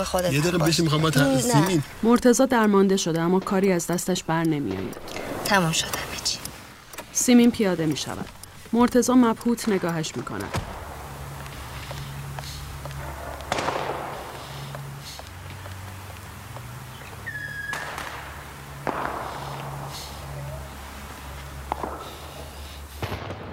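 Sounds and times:
speech: 0.0s - 6.4s, 7.2s - 10.7s
traffic hum: 0.0s - 23.5s
firecracker bangs in the street: 13.0s - 15.0s, 17.2s - 23.5s.

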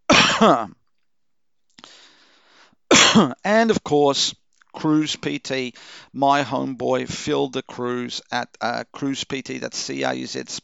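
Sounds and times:
raspy throat-clearing cough: 0.1s - 0.7s, 2.9s - 3.4s
speech: 0.4s - 0.8s, 3.1s - 10.6s.

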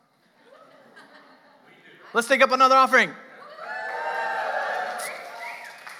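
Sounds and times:
laughter: 0.4s - 2.4s
speech: 2.1s - 3.2s
church audience cheering and whooping: 3.4s - 5.9s.

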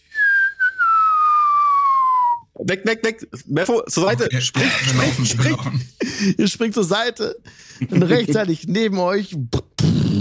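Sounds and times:
whistle of a huge glowing lava rock flying in: 0.0s - 2.4s
speech: 2.6s - 10.1s
laughter: 4.1s - 6.2s, 7.8s - 8.4s.

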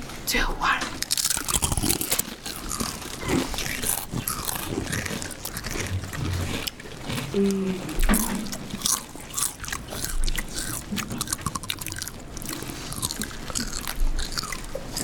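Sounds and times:
speech: 0.3s - 0.8s, 7.4s - 7.9s
several people crunching Doritos chips: 1.0s - 15.0s.

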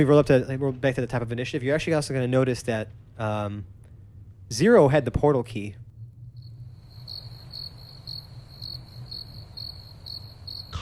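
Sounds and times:
speech: 0.0s - 3.8s, 4.5s - 5.8s
low hum: 0.0s - 10.8s
crickets chirping: 6.0s - 10.8s.

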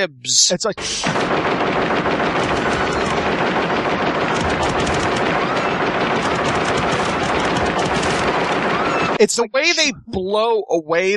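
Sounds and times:
speech: 0.0s - 3.8s, 9.2s - 11.1s
sustained machine-gun fire from a robot in a film scene: 1.0s - 9.2s.

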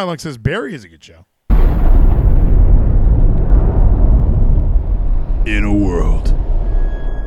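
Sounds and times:
speech: 0.0s - 2.0s, 5.4s - 6.4s
deep nuclear bomb explosion rumbling in a movie trailer: 1.5s - 7.2s.

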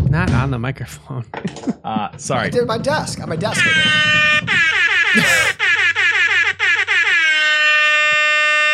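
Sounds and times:
speech: 0.1s - 5.6s
loud sustained air horn with wavering pulsing tone: 3.9s - 8.7s.

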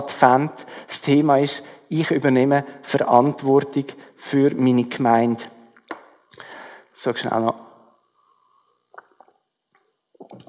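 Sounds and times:
speech: 0.0s - 5.6s, 7.0s - 7.6s
preacher sipping water during a sermon: 8.7s - 10.4s
soft wet gulping and swallowing: 8.9s - 9.5s.

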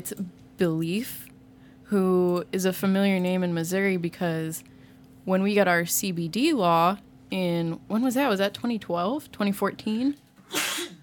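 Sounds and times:
speech: 0.0s - 1.3s, 1.9s - 10.6s
sharp sneeze: 10.4s - 11.0s.

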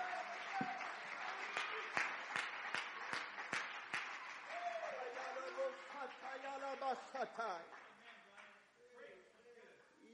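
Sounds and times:
church audience clapping: 0.0s - 8.6s.

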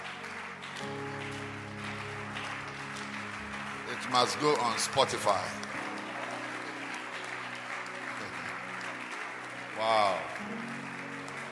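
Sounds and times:
worship congregation applauding: 0.0s - 11.4s
speech: 4.0s - 5.7s, 9.8s - 10.7s.

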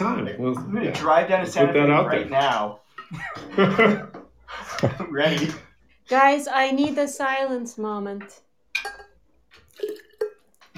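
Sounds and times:
speech: 0.2s - 8.4s
laughter: 3.1s - 5.6s
glassy clinks against a container: 8.7s - 10.6s
liquid pouring and spilling with wet splashes: 9.5s - 10.7s.

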